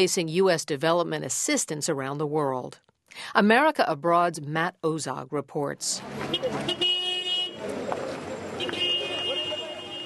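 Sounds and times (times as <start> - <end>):
speech: 0.0 - 6.9
engines of market traffic: 5.9 - 10.0
sustained car horns: 6.2 - 7.8, 8.4 - 10.0
overlapping voices and crowd chatter at an outdoor market: 7.5 - 10.0.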